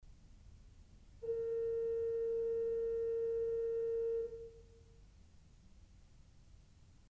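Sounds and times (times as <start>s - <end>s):
principal 4' organ pipe note A sharp: 1.2s - 4.6s.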